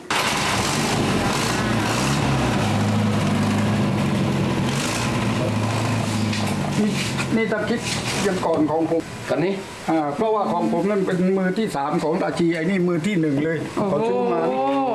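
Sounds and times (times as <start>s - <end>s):
car engine idling: 0.1s - 8.3s
speech: 7.4s - 14.9s.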